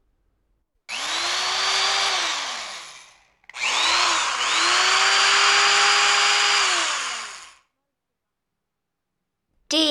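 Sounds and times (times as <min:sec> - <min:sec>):
power drill whirring: 0:00.9 - 0:07.7.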